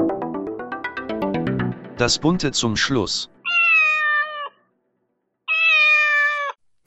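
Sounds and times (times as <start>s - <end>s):
speech: 1.2s - 3.3s
cat meowing: 3.4s - 4.6s, 5.5s - 6.6s.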